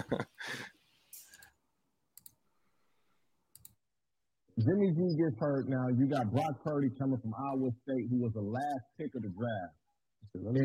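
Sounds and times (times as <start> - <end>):
computer mouse double clicks: 2.2 - 2.4, 3.5 - 3.8
speech: 4.6 - 10.6.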